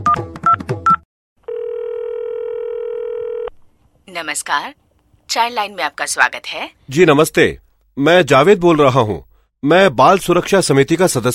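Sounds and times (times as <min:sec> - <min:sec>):
steady unbroken phone tone: 0:01.4 - 0:03.5
speech: 0:04.2 - 0:11.3.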